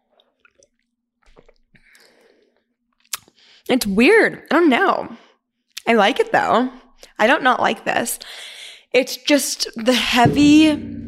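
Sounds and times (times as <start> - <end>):
wet chewing and mouth sounds while tasting something greenish and sour: 0.2 - 2.3, 3.0 - 3.4
speech: 3.6 - 5.2, 5.9 - 11.0.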